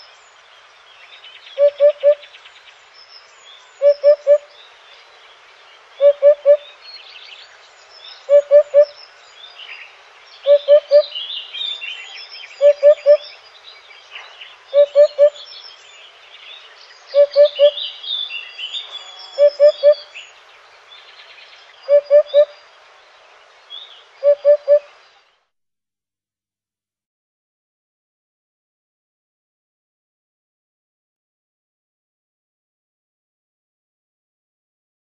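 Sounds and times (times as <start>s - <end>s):
Upupa: 1.6s - 2.2s, 3.8s - 4.4s, 6.0s - 6.7s, 8.3s - 8.9s, 12.6s - 13.2s, 14.7s - 15.4s, 17.2s - 17.8s, 19.0s - 20.0s, 21.9s - 22.5s, 24.2s - 24.8s.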